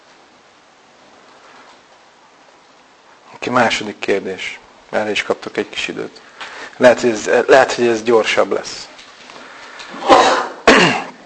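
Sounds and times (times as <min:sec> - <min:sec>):
speech: 0:03.5 - 0:08.9
loud sneeze: 0:09.9 - 0:11.2.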